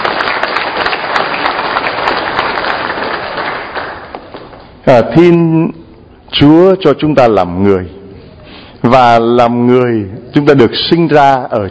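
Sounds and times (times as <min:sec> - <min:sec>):
audience applause: 0:00.0 - 0:04.8
speech: 0:04.9 - 0:08.0, 0:08.8 - 0:11.6.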